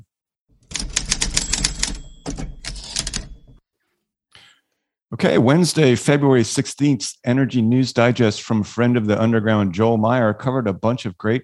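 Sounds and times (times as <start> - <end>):
typewriter keystrokes clattering: 0.6 - 3.6
speech: 5.2 - 11.4.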